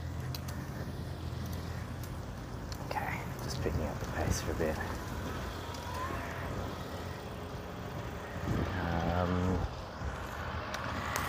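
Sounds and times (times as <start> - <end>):
faint clicking ticks during a bike ride: 0.0 - 6.0
low rumble of car traffic along a road by a park: 0.0 - 11.2
speech: 3.6 - 5.0.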